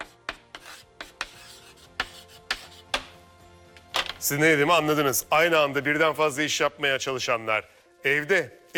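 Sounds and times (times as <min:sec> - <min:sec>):
scratchy strokes of handwriting: 0:00.0 - 0:02.9
speech: 0:04.3 - 0:08.7.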